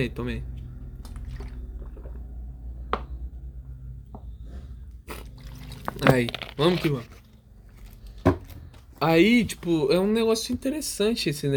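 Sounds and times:
speech: 0.0s - 0.5s, 6.0s - 7.2s, 9.0s - 11.5s
low steady hum: 0.0s - 11.1s
sips and swallows of water: 0.6s - 2.6s, 5.0s - 7.0s.

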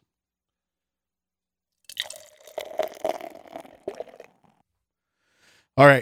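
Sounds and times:
pils beer made with oats pouring into a glass: 1.9s - 4.4s.

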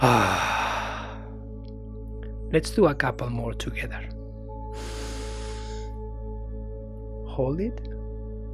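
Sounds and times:
slow exhaled breath during a guided breathing exercise: 0.0s - 1.4s, 4.7s - 6.0s
speech: 2.5s - 4.9s, 7.4s - 8.0s.

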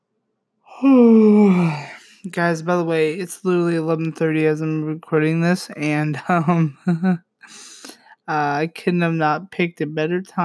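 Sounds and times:
person yawning: 0.7s - 2.2s
speech: 0.8s - 7.7s, 8.3s - 10.4s.

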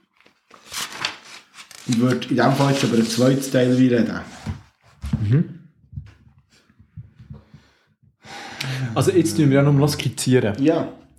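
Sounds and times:
paper sheet being turned over: 0.0s - 4.2s
speech: 1.9s - 4.5s, 5.2s - 5.6s, 9.0s - 11.0s.

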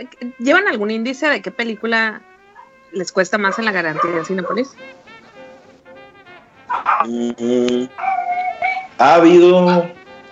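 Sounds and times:
speech: 0.0s - 2.3s, 2.9s - 5.1s, 7.0s - 8.1s, 9.0s - 10.0s
dogs whining and yelping: 2.5s - 2.8s, 3.4s - 4.7s, 6.7s - 7.1s, 8.0s - 9.0s
dog bark-howl: 3.4s - 4.7s, 6.7s - 7.2s, 8.0s - 10.0s.

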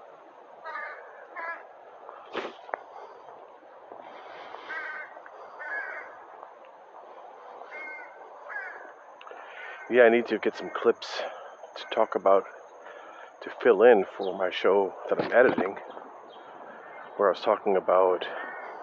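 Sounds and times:
steady outdoor hiss: 0.0s - 18.8s
crows cawing: 0.6s - 3.2s, 4.0s - 13.4s, 15.9s - 17.2s, 18.2s - 18.8s
speech: 9.9s - 12.6s, 13.4s - 16.0s, 17.2s - 18.5s.

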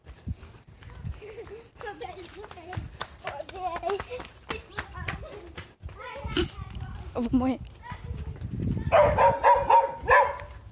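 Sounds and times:
children playing outdoors: 0.6s - 10.6s
speech: 2.0s - 4.4s, 7.2s - 7.7s
sharp taps or claps: 2.4s - 6.0s
dog barking: 8.9s - 10.6s.

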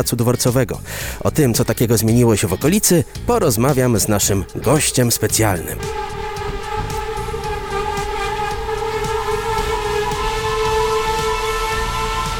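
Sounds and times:
speech: 0.0s - 6.2s
train rumbling at a railway station with tonal whine: 3.1s - 12.3s.

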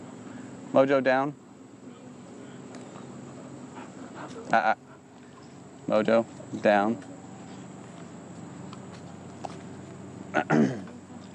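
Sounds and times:
speech: 0.7s - 1.4s, 4.5s - 4.8s, 5.9s - 7.1s, 10.3s - 10.9s
puppy panting: 3.0s - 5.6s.

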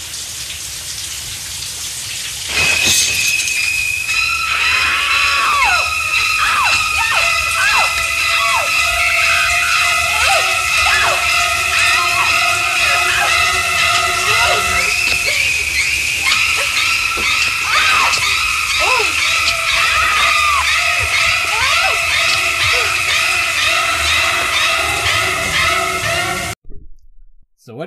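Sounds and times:
dense wall of shrill stabbing tones: 2.5s - 26.6s
woman's horror film scream: 4.2s - 26.3s.

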